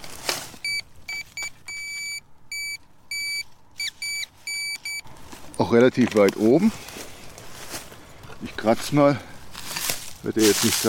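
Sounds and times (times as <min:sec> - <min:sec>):
metal detector beeping, signalling non-ferrous metal: 0:00.6 - 0:05.1
speech: 0:05.6 - 0:07.0, 0:08.6 - 0:09.3, 0:10.2 - 0:10.8.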